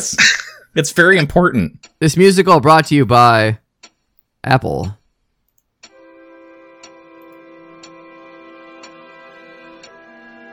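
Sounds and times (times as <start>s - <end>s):
speech: 0.0s - 3.6s, 4.4s - 5.0s
clock ticking: 0.7s - 10.5s
eerie tonal drone: 6.0s - 10.5s.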